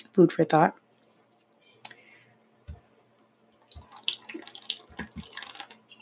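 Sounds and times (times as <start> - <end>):
speech: 0.1 - 0.8
person sipping and swallowing water: 3.8 - 6.0.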